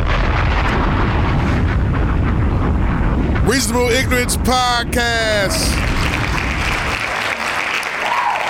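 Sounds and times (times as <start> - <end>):
bomb explosion sound effect roaring rumble: 0.0 - 8.4
speech: 3.5 - 5.9.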